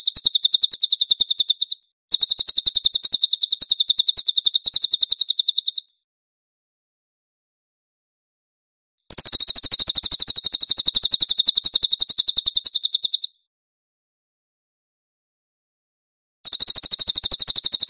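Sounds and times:
cililin singing a high dense rattle: 0.0s - 6.0s, 9.1s - 13.5s, 16.4s - 17.8s.

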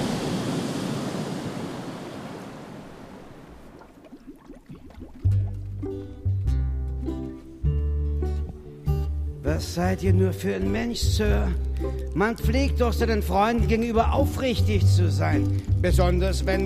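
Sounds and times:
waves surging: 0.0s - 5.0s
flood water rushing in and filling a room: 0.0s - 5.7s
music with sustained low notes: 5.1s - 16.6s
speech: 9.6s - 16.6s.

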